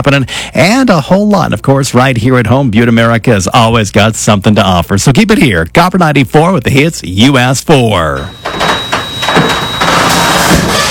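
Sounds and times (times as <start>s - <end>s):
speech: 0.0s - 8.7s
noisy garage door opening with grinding and rattling: 8.1s - 10.8s
periodic mechanical clunks: 8.1s - 10.8s.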